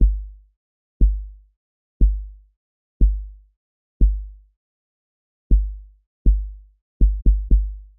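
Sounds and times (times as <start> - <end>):
breakbeat kick drum: 0.0 - 0.4, 1.0 - 1.4, 2.0 - 2.4, 3.0 - 3.4, 4.0 - 4.4, 5.5 - 7.9.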